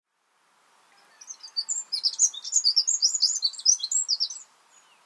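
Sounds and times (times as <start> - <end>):
Eurasian wren trilled song: 1.2 - 4.5.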